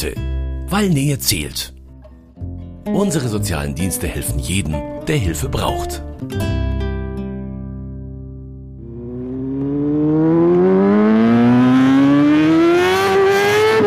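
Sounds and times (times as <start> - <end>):
speech: 0.0 - 1.8, 2.8 - 6.5
motorcycle engine idling and revving: 8.8 - 13.8.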